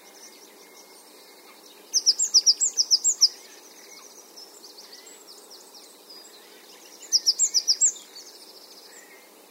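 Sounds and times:
Great tit Parus major calling: 0.0s - 5.2s, 6.2s - 8.2s
faint chirping: 0.0s - 9.4s.

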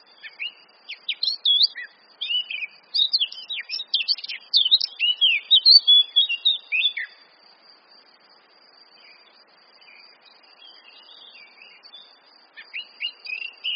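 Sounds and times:
Eurasian blackcap Sylvia atricapilla song of chirps and whistles: 0.0s - 7.3s, 9.0s - 13.7s.

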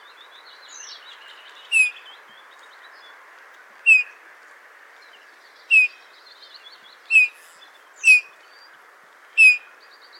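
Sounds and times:
faint chirps: 0.7s - 2.2s, 3.9s - 4.2s, 5.6s - 8.7s, 9.4s - 10.1s
Eurasian bullfinch Pyrrhula pyrrhula piping calls: 1.7s - 2.0s, 3.9s - 4.2s, 5.7s - 6.0s, 7.1s - 7.4s, 8.0s - 8.4s, 9.4s - 9.7s.

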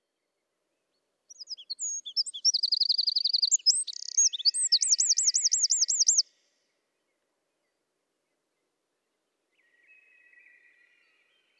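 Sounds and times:
Eurasian wren Troglodytes troglodytes singing: 1.3s - 6.2s.

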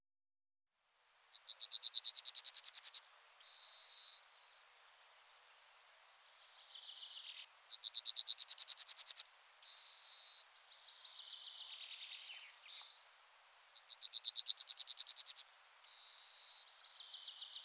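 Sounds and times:
faint bird chirps: 1.3s - 4.3s, 6.3s - 17.6s
speech: 1.4s - 2.0s
yellowhammer Emberiza citrinella singing: 1.4s - 4.2s, 6.4s - 13.1s, 13.7s - 17.6s.

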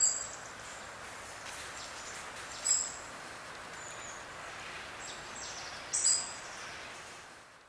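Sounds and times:
European robin Erithacus rubecula high sharp calls: 0.0s - 0.6s, 1.8s - 3.0s, 5.0s - 6.8s
steady hissing background noise: 0.0s - 7.6s.

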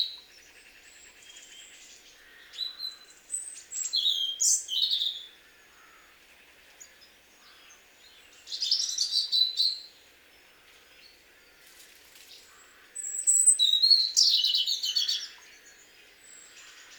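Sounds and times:
Erithacus rubecula European robin song: 0.0s - 6.0s, 6.8s - 11.2s, 12.4s - 16.9s.

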